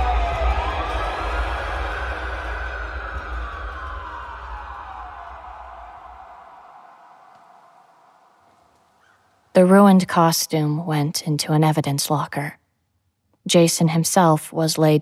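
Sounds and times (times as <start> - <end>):
low rumble: 0.0 - 8.3
siren wailing: 0.0 - 9.8
speech: 9.6 - 12.6, 13.5 - 14.9.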